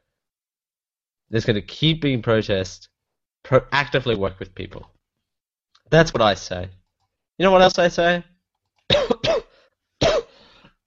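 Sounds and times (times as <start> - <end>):
speech: 1.3 - 5.0, 5.9 - 6.8, 7.4 - 8.3
harsh throaty coughs: 8.9 - 10.8.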